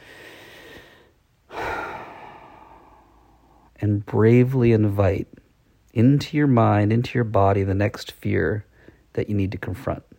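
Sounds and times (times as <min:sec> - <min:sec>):
person taking a deep breath during a guided breathing exercise: 0:00.0 - 0:03.7, 0:08.7 - 0:09.1
speech: 0:03.8 - 0:05.4, 0:06.0 - 0:10.1.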